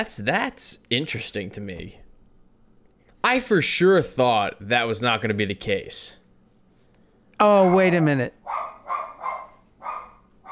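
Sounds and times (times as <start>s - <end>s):
speech: 0.0s - 2.0s, 3.2s - 6.2s, 7.4s - 8.5s
dog barking: 7.6s - 10.5s.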